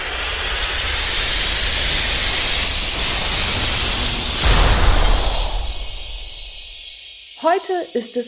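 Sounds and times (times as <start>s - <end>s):
airplane engine roaring overhead: 0.0s - 5.6s
speech: 7.4s - 8.2s.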